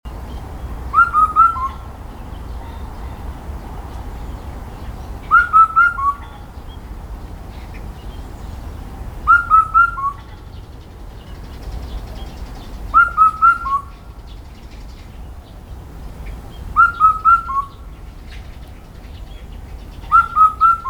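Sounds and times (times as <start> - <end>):
Indian cuckoo Cuculus micropterus calling: 0.9 - 3.4, 4.8 - 6.9, 9.2 - 10.6, 12.5 - 14.2, 16.7 - 18.8, 19.8 - 20.8.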